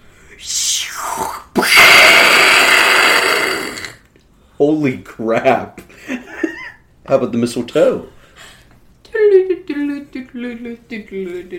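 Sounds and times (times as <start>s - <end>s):
speech: 0.4s - 1.4s, 4.6s - 6.2s, 7.1s - 8.2s, 10.4s - 11.5s
human voice imitating a missile whistle and blast: 0.4s - 4.0s.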